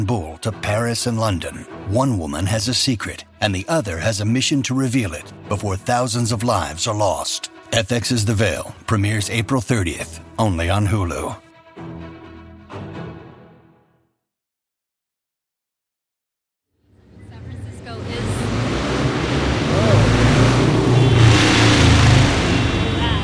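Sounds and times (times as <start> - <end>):
speech: 0.0 - 11.4
old-school motorcycle engine revving: 17.1 - 23.2.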